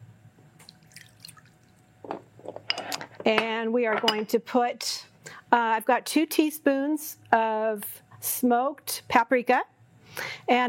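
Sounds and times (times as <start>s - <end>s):
water poured into a sauce mixture with maple syrup: 0.6s - 1.9s
speech: 3.2s - 10.6s.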